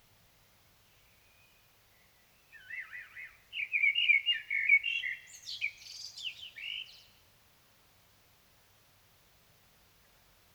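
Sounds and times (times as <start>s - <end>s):
common blackbird Turdus merula song: 0.8s - 7.2s.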